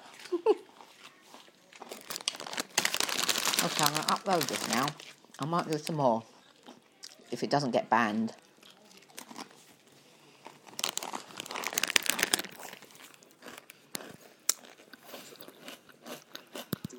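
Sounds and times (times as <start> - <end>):
crisp food being chewed near the microphone: 0.0 - 7.3, 8.4 - 16.9
crinkling: 0.2 - 6.8, 8.3 - 14.8
speech: 3.6 - 6.3, 7.3 - 8.4.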